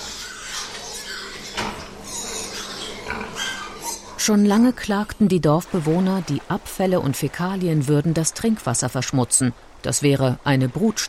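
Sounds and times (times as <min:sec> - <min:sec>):
pigs grunting and snuffling at a pig farm: 0:00.0 - 0:04.3
speech: 0:04.2 - 0:11.0.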